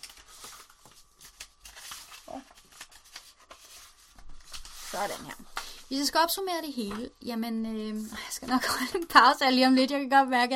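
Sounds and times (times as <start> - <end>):
papers rustling and shuffling: 0.0 - 7.1
speech: 5.0 - 10.5.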